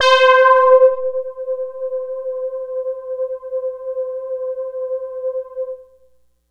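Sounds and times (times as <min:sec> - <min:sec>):
Prophet 600 synth spring one-shot in C: 0:00.0 - 0:02.2.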